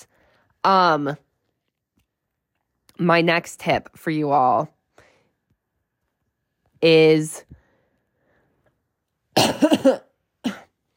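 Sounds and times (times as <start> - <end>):
speech: 0.6 - 1.2, 3.0 - 4.8, 6.8 - 7.6, 9.4 - 10.6
person coughing: 9.3 - 10.8.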